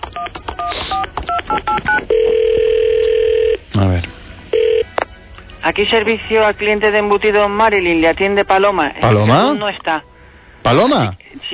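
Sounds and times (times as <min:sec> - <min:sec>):
telephone keypad two-tone dialing beeps: 0:00.2 - 0:03.6
steady telephone line tone: 0:01.9 - 0:03.6, 0:04.5 - 0:04.9
speech: 0:05.8 - 0:11.5.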